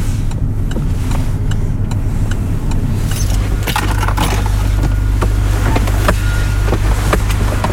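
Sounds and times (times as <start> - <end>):
car engine humming while parking: 0.0 - 7.7
light metallic jangle: 3.1 - 4.7.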